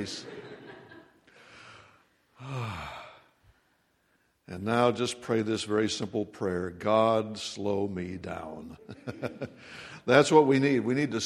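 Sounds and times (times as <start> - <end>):
speech: 0.0 - 0.4, 4.5 - 11.2
laughter: 0.0 - 1.3, 8.7 - 9.8
person taking a deep breath during a guided breathing exercise: 1.3 - 4.3, 9.6 - 10.1.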